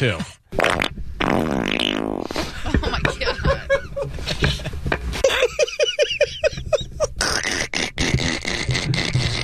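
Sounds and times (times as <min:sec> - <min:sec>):
speech: 0:00.0 - 0:00.8
loud sputtering fart: 0:00.5 - 0:02.5, 0:07.2 - 0:09.4
man laughing in rhythmic breathy bursts: 0:02.4 - 0:07.2.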